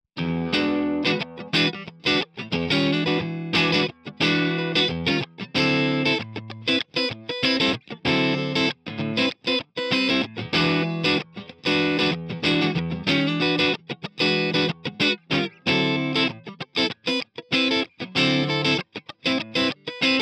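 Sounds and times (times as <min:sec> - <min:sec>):
clean guitar through amp only: 0:00.2 - 0:20.2.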